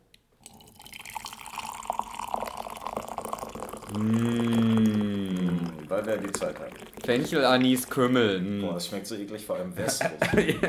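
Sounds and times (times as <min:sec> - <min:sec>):
tea pouring into a cup: 0:00.4 - 0:08.3
speech: 0:03.9 - 0:04.6, 0:05.9 - 0:10.6
laughter: 0:09.8 - 0:10.6.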